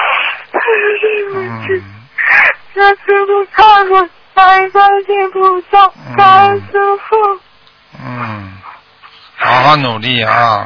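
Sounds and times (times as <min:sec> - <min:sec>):
girl crying over a phone line: 0:00.6 - 0:03.0
speech: 0:01.5 - 0:02.0, 0:02.8 - 0:07.4, 0:09.5 - 0:10.6.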